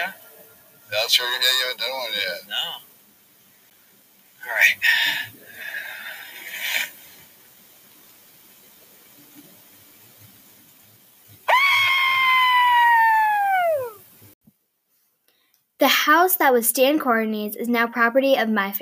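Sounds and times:
speech: 0.9s - 2.9s, 4.4s - 5.4s, 15.8s - 18.8s
person yelling an imitation of a Bigfoot call: 11.5s - 14.0s.

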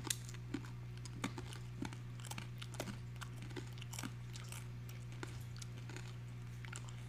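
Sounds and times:
biting and crunching a hard seaweed rice cracker: 0.0s - 7.0s.

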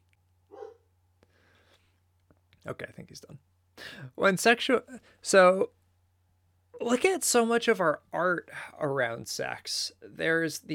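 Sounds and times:
dog barking: 0.5s - 0.9s
speech: 2.6s - 5.8s, 6.8s - 10.7s.

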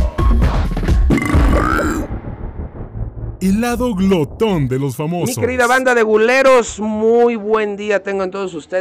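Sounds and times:
long low guttural burp: 1.1s - 2.1s
speech: 3.4s - 8.7s.

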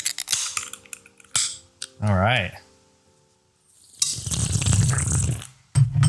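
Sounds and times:
speech: 2.0s - 2.6s
liquor pouring into a tumbler glass: 3.8s - 5.5s.

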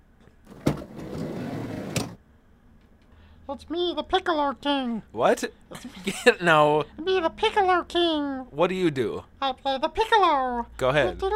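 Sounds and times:
sliding door opening: 0.5s - 2.2s
speech: 3.5s - 11.3s.

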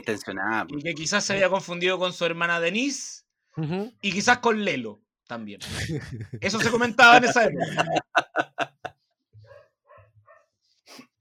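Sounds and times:
speech: 0.0s - 8.2s
laughter: 5.6s - 8.9s
dog barking: 9.4s - 10.5s.

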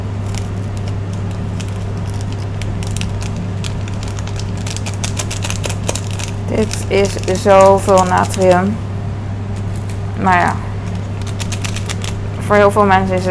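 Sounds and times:
scissors snipping open a chicken-flavour instant noodle seasoning packet: 0.2s - 8.6s, 10.9s - 12.2s
plastic crackling: 0.2s - 8.7s, 10.8s - 12.3s
speech: 6.5s - 8.8s, 10.2s - 10.7s, 12.5s - 13.2s.

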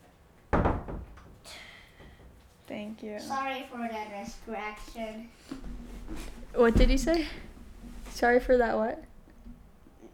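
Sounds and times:
door thump: 0.5s - 1.4s
speech: 2.9s - 7.5s, 8.2s - 9.1s.

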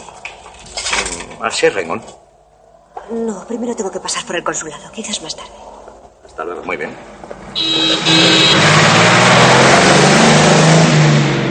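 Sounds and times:
speech: 1.4s - 2.2s, 3.1s - 5.8s, 6.4s - 8.6s
car engine revving hard as the car speeds by: 7.1s - 11.4s.

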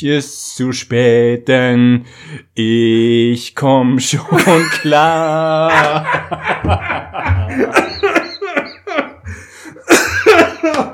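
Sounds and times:
speech: 0.0s - 7.9s
laughter: 4.3s - 10.9s
violent coughing fit: 7.5s - 10.9s
strained retching-like gasps: 9.2s - 9.9s.

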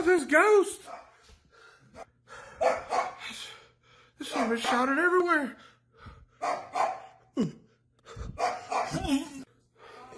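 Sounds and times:
speech: 0.1s - 1.0s, 2.0s - 3.6s, 4.2s - 5.7s, 6.4s - 7.6s, 8.4s - 9.4s
dog barking: 0.8s - 1.2s, 2.6s - 3.3s, 4.2s - 5.0s, 6.4s - 7.2s, 8.3s - 9.1s
dog yelping: 2.6s - 3.2s, 6.4s - 7.1s, 8.4s - 9.3s.

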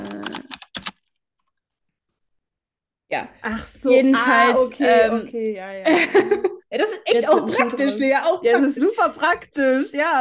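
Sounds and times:
quick typing of a chat message on a computer keyboard: 0.0s - 1.1s
speech: 3.1s - 10.1s.

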